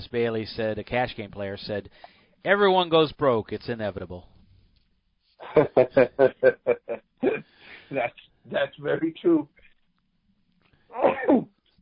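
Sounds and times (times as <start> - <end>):
speech: 0.0 - 4.3, 5.5 - 9.6, 10.9 - 11.6
laughter: 5.4 - 7.4
person sneezing: 7.2 - 7.6, 10.9 - 11.5.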